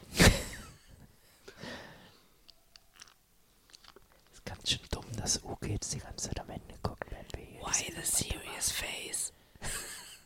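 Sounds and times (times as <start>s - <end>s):
audible breathing with a snort-like exhale: 1.2s - 2.4s, 9.3s - 9.6s
faint clicks and mouth noises: 2.4s - 5.4s
speech: 4.7s - 7.0s, 7.6s - 9.8s.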